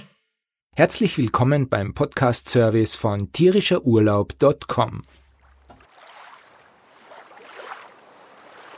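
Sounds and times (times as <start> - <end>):
speech: 0.8 - 5.2
paddle dipping into calm lake water: 5.1 - 8.7.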